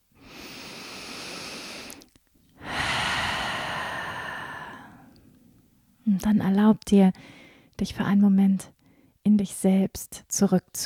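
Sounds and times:
slow soft breathing in through the nose and out through the open mouth during a relaxation exercise: 0.2s - 5.8s, 7.2s - 7.8s
speech: 6.1s - 10.8s.

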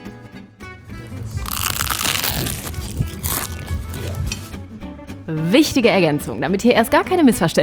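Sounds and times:
person biting into crispy food with a crunchy crust: 0.9s - 4.6s
speech: 5.3s - 7.6s.

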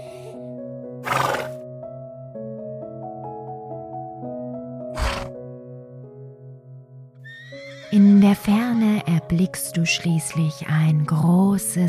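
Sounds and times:
horse snorting: 1.0s - 1.6s, 4.9s - 5.4s
speech: 7.9s - 11.8s.

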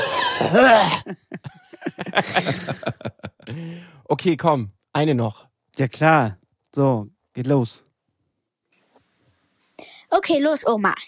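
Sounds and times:
person imitating a grandfather's loud harsh cough: 0.0s - 1.2s
speech: 0.4s - 7.9s, 10.1s - 11.0s
laughter: 1.1s - 3.6s.

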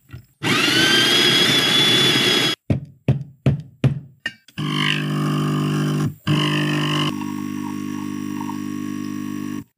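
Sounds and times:
portafilter espresso machine whirring and buzzing as it brews: 0.5s - 2.6s, 4.6s - 9.7s.

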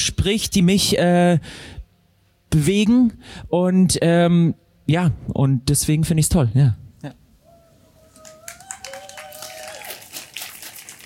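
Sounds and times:
speech: 0.0s - 1.8s, 2.5s - 7.2s
live audience applause: 8.1s - 11.0s.

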